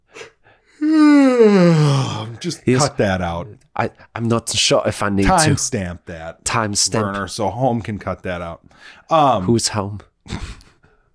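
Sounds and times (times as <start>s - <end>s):
long drawn-out person yawning: 0.8s - 2.4s
speech: 1.4s - 10.6s.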